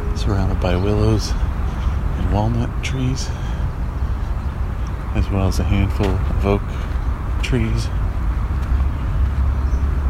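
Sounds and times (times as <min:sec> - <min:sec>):
distant highway traffic rumble: 0:00.0 - 0:10.0
speech: 0:00.2 - 0:01.5, 0:02.3 - 0:03.5, 0:05.2 - 0:08.0.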